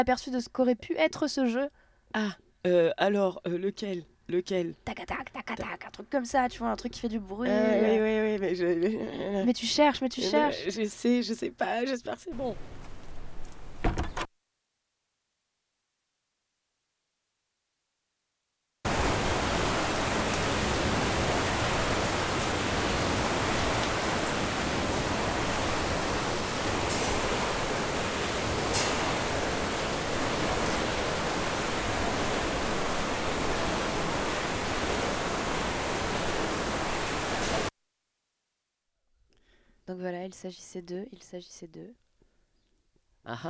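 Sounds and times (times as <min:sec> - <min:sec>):
speech: 0:00.0 - 0:12.8, 0:39.9 - 0:42.0, 0:43.2 - 0:43.4
water rushing beneath a mill wheel: 0:18.9 - 0:37.7.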